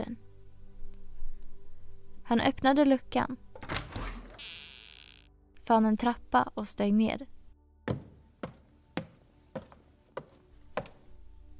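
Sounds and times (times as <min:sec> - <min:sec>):
speech: 0:02.3 - 0:03.4, 0:05.7 - 0:07.4
firm knocks on a wooden door: 0:07.9 - 0:09.7.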